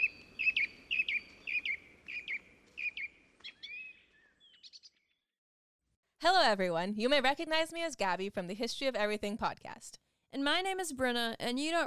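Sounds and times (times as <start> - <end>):
bird singing: 0.0 - 5.3
speech: 6.2 - 11.8.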